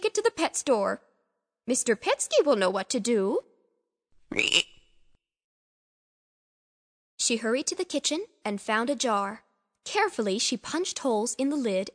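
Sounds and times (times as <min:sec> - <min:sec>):
speech: 0:00.4 - 0:03.5, 0:04.3 - 0:04.8, 0:07.2 - 0:11.9
frog croaking: 0:04.3 - 0:04.9.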